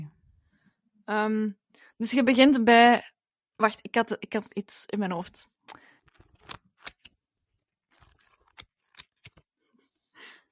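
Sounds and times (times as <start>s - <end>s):
speech: 1.1s - 5.8s
paper rustling and crinkling: 7.8s - 9.5s.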